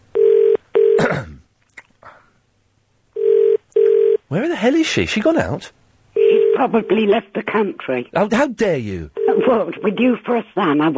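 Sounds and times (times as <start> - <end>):
telephone ringback tone on an outgoing call: 0.2 - 1.0, 3.2 - 4.2, 6.2 - 6.9, 9.2 - 10.0
speech: 4.3 - 5.8, 6.6 - 10.9.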